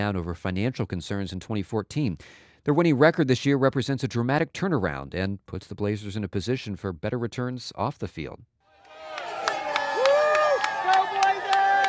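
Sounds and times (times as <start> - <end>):
speech: 0.0 - 9.3
crowd of football fans cheering outdoors on a sidewalk: 8.7 - 11.8
football fans clapping in a quick rhythm: 8.8 - 11.8.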